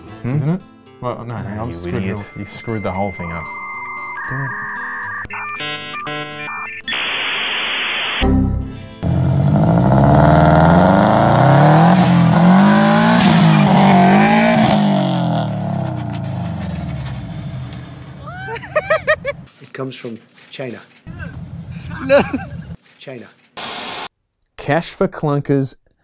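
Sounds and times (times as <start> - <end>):
speech: 0.2 - 3.6, 4.3 - 4.7, 19.8 - 21.0, 22.0 - 22.5, 23.1 - 23.4, 24.7 - 25.8
electronic beeping tones: 2.0 - 8.7
car engine roaring and revving: 9.0 - 18.3
tires screeching in a sustained burnout: 9.0 - 19.5
laughter: 18.2 - 19.5, 21.2 - 22.8.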